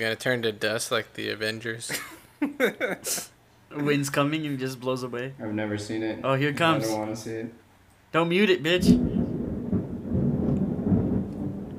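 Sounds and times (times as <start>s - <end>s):
speech: 0.0s - 9.2s
faint rain hiss: 0.0s - 11.7s
thunder rumbling: 8.7s - 11.7s.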